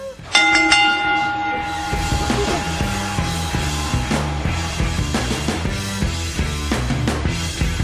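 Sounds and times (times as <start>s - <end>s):
bell strike: 0.3s - 7.7s.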